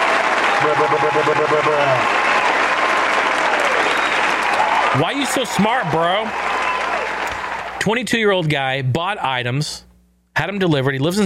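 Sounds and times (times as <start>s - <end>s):
crowd applauding: 0.0s - 7.9s
horn-like tone: 0.5s - 2.0s
speech: 0.7s - 2.3s, 4.9s - 6.6s, 7.8s - 11.2s.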